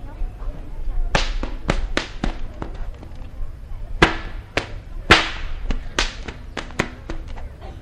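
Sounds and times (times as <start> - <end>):
faint outdoor background: 0.0 - 7.8
cattle whips being popped to roust cattle out of underbrush: 1.2 - 2.7, 4.0 - 7.8.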